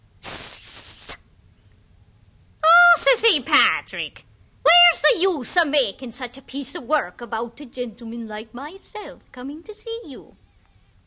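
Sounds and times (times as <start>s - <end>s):
serpent hissing: 0.2s - 1.2s
speech: 3.2s - 4.3s, 4.9s - 10.4s.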